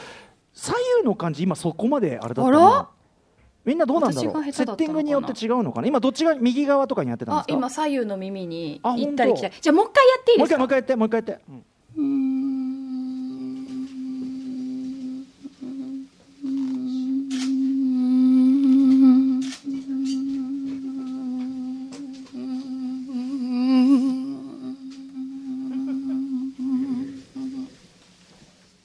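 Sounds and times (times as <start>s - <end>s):
speech: 0.7s - 3.0s, 3.6s - 12.3s
voice imitating a buzzing mosquito: 11.5s - 27.8s.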